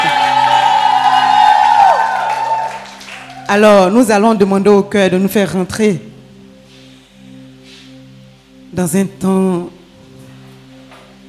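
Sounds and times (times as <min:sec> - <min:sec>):
crowd shouting and whooping with joy: 0:00.0 - 0:03.5
speech: 0:03.5 - 0:06.1, 0:08.8 - 0:09.8.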